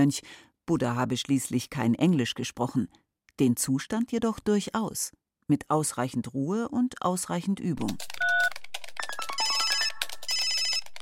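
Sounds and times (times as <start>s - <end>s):
speech: 0.0s - 8.6s
smartphone ringtone with chiming electronic melody: 8.2s - 11.0s.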